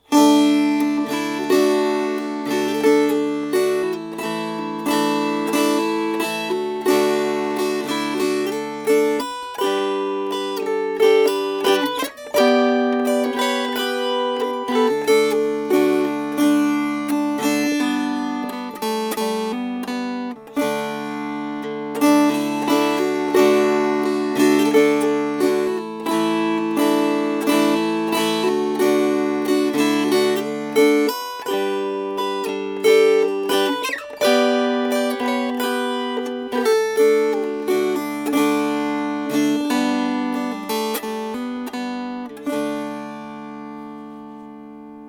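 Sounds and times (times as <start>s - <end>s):
strummed string instrument: 0.0s - 45.0s.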